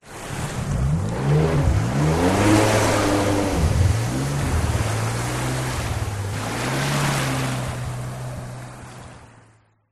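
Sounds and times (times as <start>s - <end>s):
jet ski taking off: 0.0s - 9.5s.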